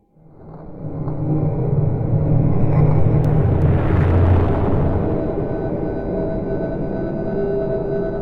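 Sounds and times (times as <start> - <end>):
menacing magic spell ambience: 0.6 - 8.1.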